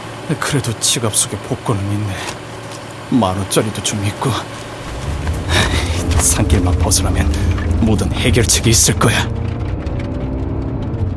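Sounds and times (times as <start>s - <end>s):
faint tonal whine: 0.0s - 9.8s
speech: 0.3s - 2.5s, 3.1s - 4.7s, 6.2s - 9.4s
car engine running while driving: 3.7s - 11.1s.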